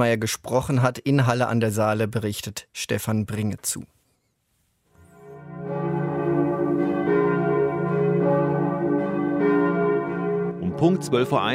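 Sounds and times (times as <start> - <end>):
speech: 0.0 - 4.0, 10.8 - 11.5
overlapping church bells pealing across a city: 5.1 - 11.5.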